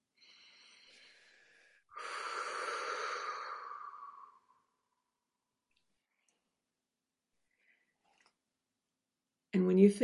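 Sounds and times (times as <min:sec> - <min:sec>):
deep inhale during a guided breathing exercise: 0:00.0 - 0:04.8
forceful exhale during a guided breathing exercise: 0:00.2 - 0:04.6.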